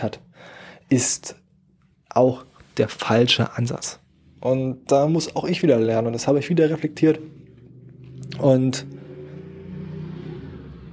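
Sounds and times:
speech: 0:00.0 - 0:01.4, 0:02.1 - 0:07.4, 0:08.3 - 0:09.0
motorcycle engine revving outside: 0:06.1 - 0:10.9.

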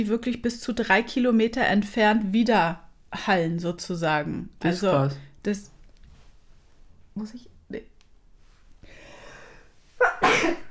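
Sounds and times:
speech: 0:00.0 - 0:05.7, 0:07.2 - 0:07.9
person sneezing: 0:10.0 - 0:10.7.

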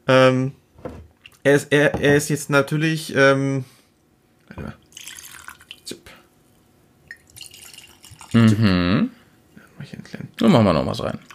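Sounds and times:
speech: 0:01.4 - 0:03.8, 0:04.6 - 0:04.8, 0:08.4 - 0:09.1, 0:09.9 - 0:11.3
drink pouring into a glass for tasting: 0:04.8 - 0:05.9, 0:07.1 - 0:08.4, 0:11.2 - 0:11.3.

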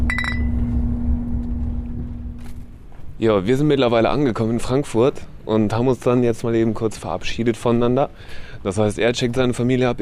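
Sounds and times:
steady low vehicle engine hum and rumble: 0:00.0 - 0:06.1
drinks clinking together in a toast: 0:00.1 - 0:00.6
speech: 0:03.2 - 0:10.0.

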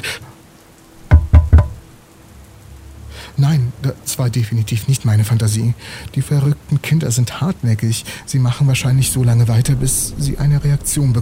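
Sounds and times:
faint hiss: 0:00.0 - 0:11.2
knocking on a window: 0:01.0 - 0:01.9
speech: 0:03.4 - 0:11.2.

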